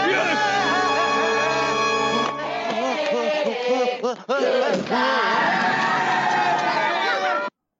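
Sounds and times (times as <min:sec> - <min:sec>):
crowd cheering and shouting during a stage dive: 0:00.0 - 0:03.6, 0:04.4 - 0:07.5
sustained musical chord: 0:00.4 - 0:02.6
speech: 0:04.1 - 0:06.1.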